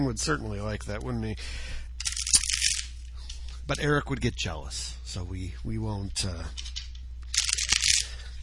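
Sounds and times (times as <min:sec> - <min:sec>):
speech: 0:00.0 - 0:01.8, 0:03.7 - 0:06.7
low steady hum: 0:00.0 - 0:08.4
riffle shuffle of a deck of playing cards: 0:02.0 - 0:03.1, 0:07.3 - 0:08.2.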